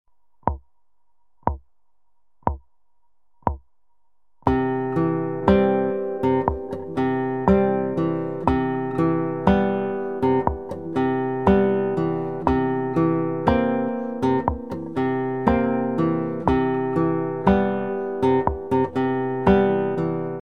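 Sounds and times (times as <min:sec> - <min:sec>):
acoustic pop guitar picking: 0:04.4 - 0:20.4.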